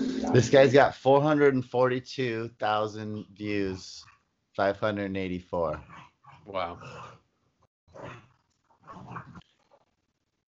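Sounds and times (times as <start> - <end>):
speech: 0.3 - 7.2
frantic harsh animal snarls and barking yowls: 5.8 - 7.2, 7.9 - 9.4.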